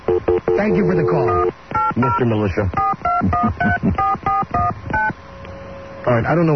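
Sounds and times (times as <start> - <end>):
touch-tone telephone keypad dialing a number: 0.1 - 5.2
speech: 0.6 - 1.4, 2.0 - 4.3, 6.1 - 6.5.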